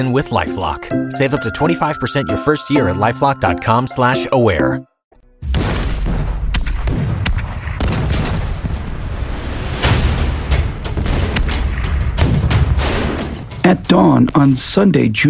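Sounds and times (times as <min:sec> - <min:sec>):
speech: 0:00.0 - 0:05.6, 0:13.7 - 0:15.2
massive artillery barrage along the 38th parallel at the start of the Korean War: 0:05.4 - 0:13.5.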